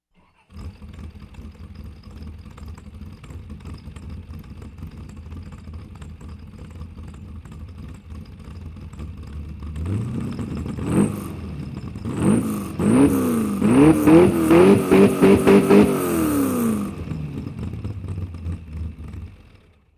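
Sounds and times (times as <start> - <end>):
high performance car engine starting, idling, revving and stopping: 0.2 - 3.8, 9.0 - 19.7.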